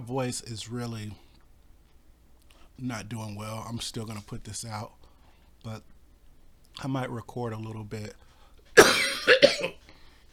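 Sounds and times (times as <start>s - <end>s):
speech: 0.0s - 1.2s, 2.8s - 5.0s, 5.6s - 5.9s, 6.8s - 8.2s
person coughing: 8.8s - 9.8s.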